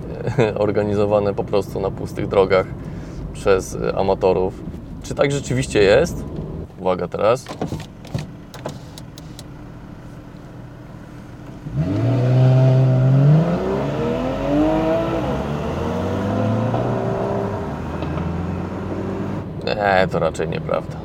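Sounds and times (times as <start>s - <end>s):
speech: 0.2s - 7.9s, 20.0s - 21.0s
Porsche 911 sports car engine revving hard: 11.5s - 19.5s.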